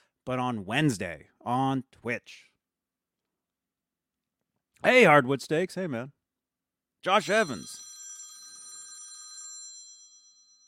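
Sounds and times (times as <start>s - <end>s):
speech: 0.2s - 2.5s, 4.8s - 6.2s, 7.0s - 7.9s
telephone ringing with a buzzing bell tone: 7.1s - 10.6s.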